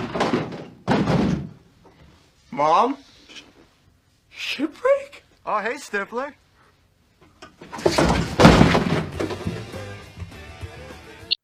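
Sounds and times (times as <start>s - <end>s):
heavy thuds against a locked door: 0.0s - 1.6s, 7.8s - 9.7s
speech: 2.6s - 3.1s, 4.4s - 6.4s.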